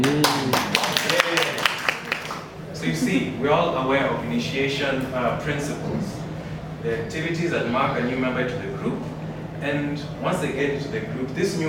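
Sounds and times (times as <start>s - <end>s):
small group clapping: 0.0s - 2.5s
speech: 3.1s - 6.2s, 6.8s - 11.6s.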